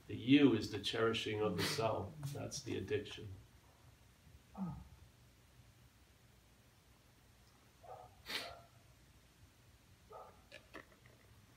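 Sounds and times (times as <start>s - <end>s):
low steady hiss: 0.0s - 11.5s
speech: 0.1s - 3.4s, 4.6s - 4.9s
dog barking: 7.8s - 8.8s, 10.1s - 10.4s.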